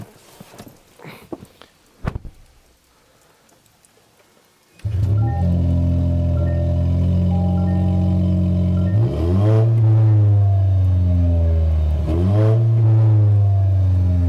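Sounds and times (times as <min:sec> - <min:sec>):
Toyota Tacoma truck engine with dual exhaust idling and revving: 0:04.8 - 0:14.2.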